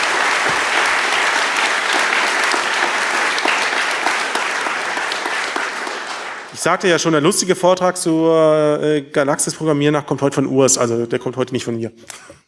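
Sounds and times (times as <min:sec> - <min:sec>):
sizable audience applauding after a lecture: 0:00.0 - 0:06.9
speech: 0:06.6 - 0:12.4.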